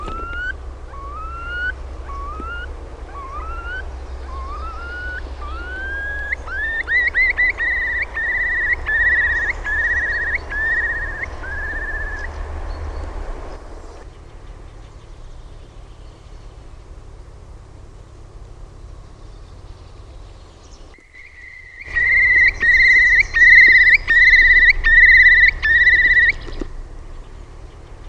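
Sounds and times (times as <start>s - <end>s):
Eurasian curlew bubbling call: 0.0s - 12.3s, 20.9s - 26.8s
low noise: 0.0s - 28.0s.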